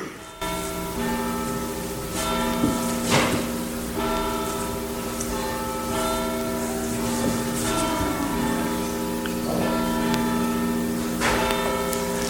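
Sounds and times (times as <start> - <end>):
several church bells ringing: 0.0 - 12.2
steady resonant hum: 0.0 - 12.2.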